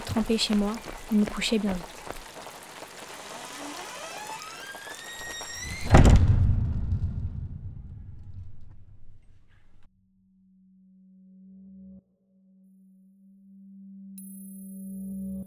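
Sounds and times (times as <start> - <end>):
heavy rain hissing: 0.0 - 6.0
deep rumbling downpour: 0.0 - 9.8
speech: 0.2 - 1.9
sudden loud burst: 5.6 - 9.5.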